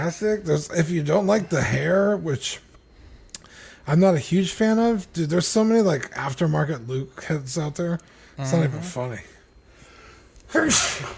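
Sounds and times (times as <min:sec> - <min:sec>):
speech: 0:00.0 - 0:02.7, 0:03.8 - 0:09.3, 0:10.5 - 0:11.1
sneeze: 0:10.6 - 0:11.1.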